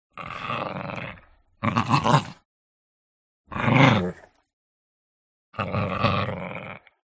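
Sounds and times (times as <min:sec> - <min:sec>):
Chihuahua dogs snarling in a soft fight: 0:00.1 - 0:02.4, 0:03.5 - 0:04.3, 0:05.6 - 0:07.0.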